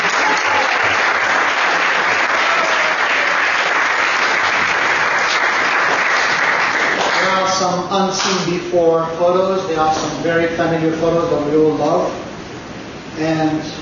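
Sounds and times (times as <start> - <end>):
audience applause of many hands clapping: 0.0 - 7.5
speech: 7.7 - 12.2, 13.2 - 13.7.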